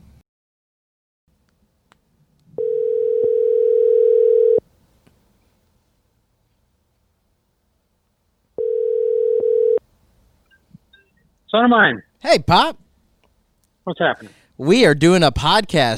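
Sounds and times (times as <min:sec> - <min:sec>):
outgoing phone call ringback tones: 0:02.6 - 0:04.6, 0:08.6 - 0:09.8
speech: 0:11.5 - 0:12.8, 0:13.8 - 0:15.9.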